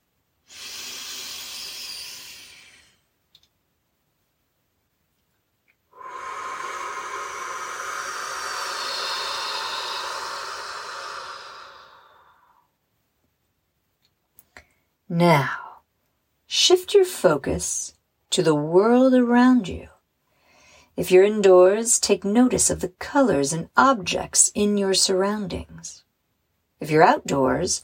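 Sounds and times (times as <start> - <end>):
slow deep breathing in and out during a walking meditation: 0.5 - 3.1, 5.9 - 12.8
speech: 15.1 - 15.6, 16.6 - 19.9, 21.0 - 26.0, 26.8 - 27.8.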